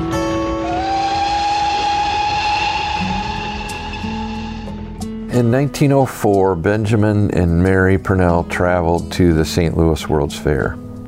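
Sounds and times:
sustained humming tones: 0.0s - 5.2s
miniature ride-on train rolling with mechanical rumble: 0.1s - 4.9s
speech: 5.4s - 10.8s.

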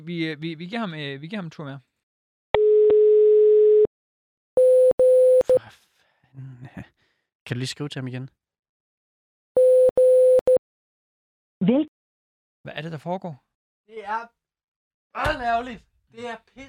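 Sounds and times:
speech: 0.0s - 1.9s, 5.5s - 5.8s, 6.4s - 6.9s, 7.5s - 8.4s, 11.6s - 11.9s, 12.6s - 14.4s, 15.2s - 16.6s
unanswered telephone line ringing tone: 2.6s - 3.9s, 4.6s - 5.6s, 9.6s - 10.6s.

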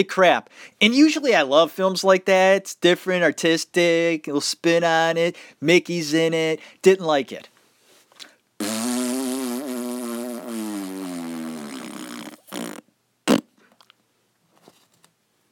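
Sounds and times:
speech: 0.0s - 7.5s
fart sound effect: 8.6s - 13.5s.

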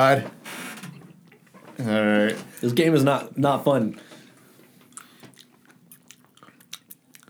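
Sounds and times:
speech: 0.0s - 0.4s, 1.8s - 4.1s
faint steady hum: 0.0s - 7.2s
wet chewing of bubble gum: 4.7s - 7.2s.

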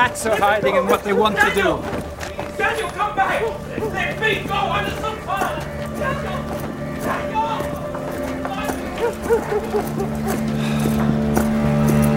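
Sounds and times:
speech: 0.0s - 7.2s, 9.0s - 10.7s
horse hooves clip-clopping: 0.0s - 12.1s
laughter: 0.0s - 12.1s
low sustained drone: 4.5s - 12.1s.

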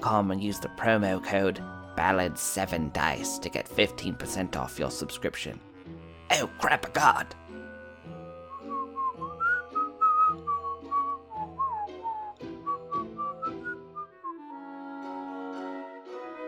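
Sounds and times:
speech: 0.1s - 5.7s, 6.3s - 7.4s
person whistling a wandering melody: 8.5s - 15.2s.

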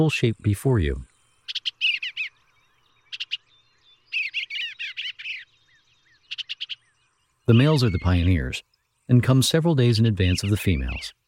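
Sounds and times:
speech: 0.0s - 1.1s, 7.5s - 11.2s
bluebird warbling chirpy song: 1.4s - 2.5s, 3.1s - 8.6s.

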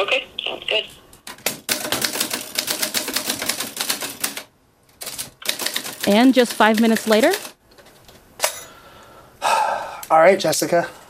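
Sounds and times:
speech: 0.7s - 1.0s, 6.1s - 7.5s, 10.2s - 11.0s
typing on a keyboard: 1.4s - 7.6s.

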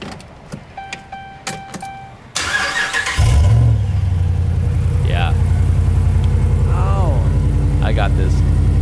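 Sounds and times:
pickup truck warning chimes: 0.8s - 2.5s
Ram pickup truck V8 Hemi engine starting and idling: 2.2s - 8.8s.

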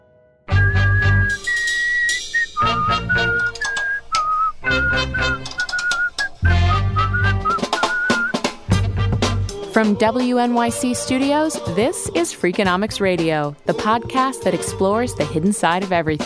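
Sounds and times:
instrumental backing with bass and percussion: 0.0s - 16.2s
person whistling a tune: 0.5s - 8.5s
speech: 9.8s - 16.2s.

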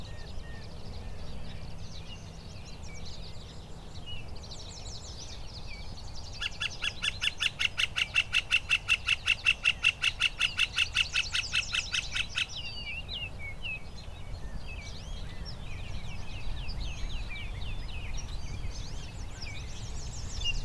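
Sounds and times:
birds chirping softly: 0.0s - 20.6s
northern flicker calling in a conservation area: 6.4s - 13.0s.

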